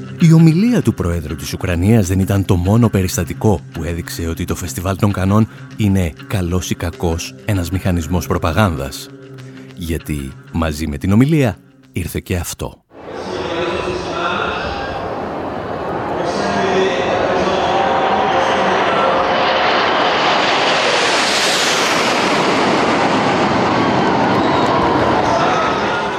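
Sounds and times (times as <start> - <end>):
speech: 0.2 - 9.2, 9.8 - 13.3
French Air Force fighter jets flying in formation over Cannes for a film premiere: 13.0 - 26.1.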